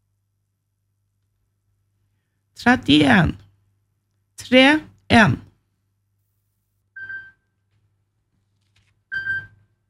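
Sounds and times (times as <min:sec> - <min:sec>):
faint low hum: 0:00.0 - 0:09.8
speech: 0:02.6 - 0:03.4, 0:04.4 - 0:05.4
telephone ringing: 0:09.1 - 0:09.8.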